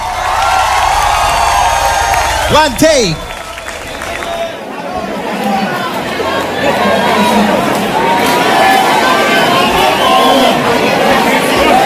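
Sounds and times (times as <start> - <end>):
audience clapping: 0.0 - 4.6
crowd cheering: 0.0 - 11.8
speech: 2.5 - 3.3.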